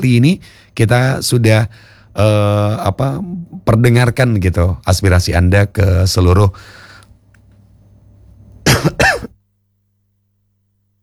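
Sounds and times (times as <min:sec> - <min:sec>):
speech: 0:00.0 - 0:06.8, 0:08.8 - 0:09.1
faint low hum: 0:00.0 - 0:11.0
person coughing: 0:08.7 - 0:09.4.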